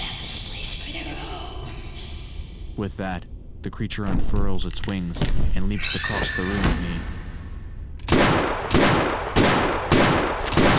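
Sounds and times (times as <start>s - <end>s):
speech: 2.8s - 7.2s
.410 shotgun shells fired in an enclosed space: 8.0s - 10.7s.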